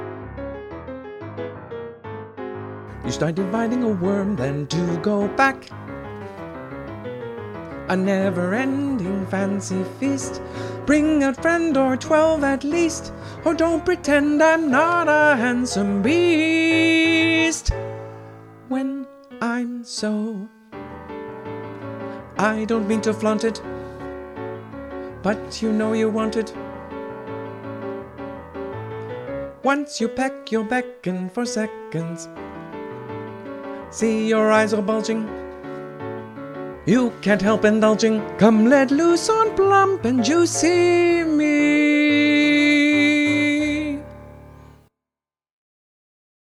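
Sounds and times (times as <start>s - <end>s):
person singing vocal guide: 2.9s - 5.8s, 7.6s - 20.7s, 22.2s - 24.0s, 25.1s - 26.7s, 29.5s - 33.0s, 33.8s - 35.6s, 36.8s - 44.2s.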